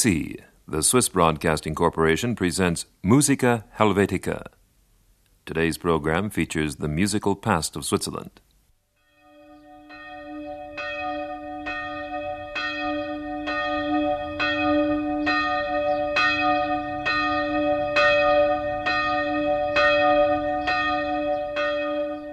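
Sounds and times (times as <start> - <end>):
speech: 0.0 - 4.6, 5.5 - 8.4
single village church bell tolling: 9.2 - 22.3.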